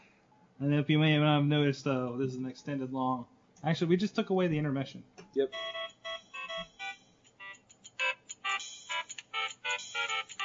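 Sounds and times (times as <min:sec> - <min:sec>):
speech: 0:00.6 - 0:05.8
tinny video game theme ringtone from a phone speaker: 0:05.5 - 0:10.4.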